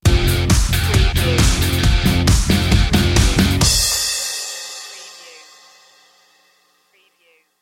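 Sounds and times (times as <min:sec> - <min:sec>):
instrumental metal music: 0:00.0 - 0:06.9.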